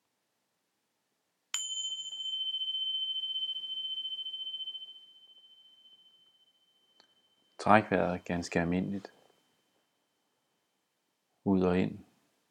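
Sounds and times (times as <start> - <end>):
meditation bell struck and ringing: 1.6 - 10.9
speech: 7.6 - 9.2, 11.5 - 12.0.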